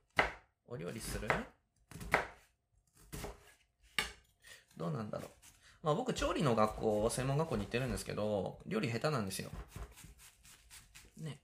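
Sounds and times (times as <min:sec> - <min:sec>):
knife finely mincing onion for fried rice: 0:00.0 - 0:04.3, 0:06.5 - 0:08.1, 0:09.4 - 0:11.2
speech: 0:00.7 - 0:01.6, 0:04.8 - 0:10.1.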